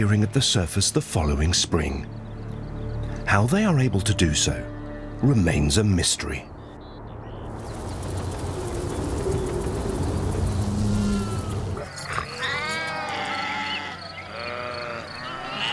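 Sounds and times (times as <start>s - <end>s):
speech: 0.0s - 2.2s, 3.3s - 6.5s
steady outdoor rustle: 7.5s - 15.7s
flock of grazing sheep bleating: 12.1s - 15.7s.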